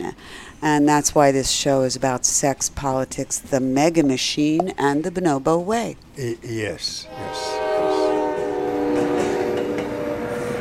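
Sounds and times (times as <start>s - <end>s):
speech: 0.1s - 7.6s
train horn blaring in a long steady harmonic tone: 6.9s - 10.5s.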